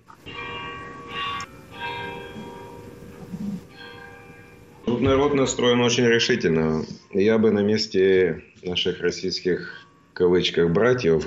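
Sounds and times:
tower carillon bells playing a slow melody: 0.2s - 6.7s
speech: 5.0s - 11.2s.

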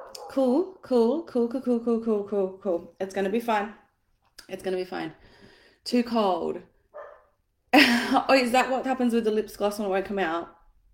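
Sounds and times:
neighbor's dog barking: 0.0s - 0.4s, 6.9s - 7.4s
speech: 0.4s - 3.8s, 4.5s - 6.7s, 7.7s - 10.6s.

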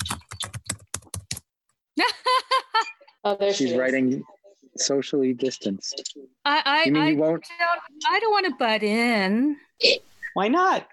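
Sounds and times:
fast typing on a computer keyboard: 0.0s - 1.5s
speech: 3.2s - 10.9s.

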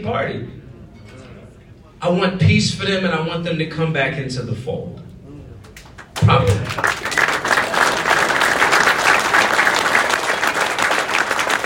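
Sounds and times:
speech: 0.0s - 0.6s, 2.0s - 5.1s, 6.2s - 7.1s
audience applause: 5.9s - 11.6s.

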